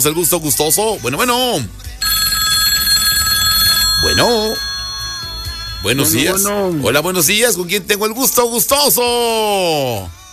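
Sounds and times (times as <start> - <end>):
speech: 0.0 - 2.2, 4.0 - 4.7, 5.8 - 10.2
telephone ringing with an incoming call: 2.0 - 7.3.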